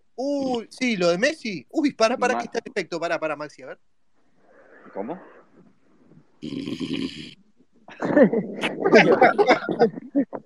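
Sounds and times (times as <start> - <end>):
speech: 0.2 - 3.9, 4.9 - 5.4, 6.4 - 7.4, 8.0 - 10.4
loud rasping snore: 6.4 - 7.4
people chuckling: 7.9 - 10.4.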